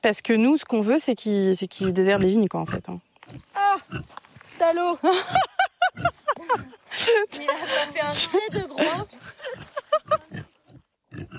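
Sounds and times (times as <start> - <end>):
speech: 0.0 - 5.5, 6.5 - 9.6
pigs grunting and oinking: 1.7 - 4.1, 8.1 - 11.3
laughter: 5.0 - 10.5.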